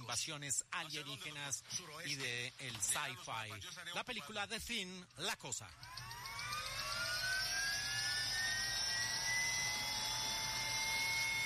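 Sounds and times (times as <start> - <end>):
speech: 0.1 - 5.9
helicopter turbine whine spooling up before takeoff: 5.7 - 11.4.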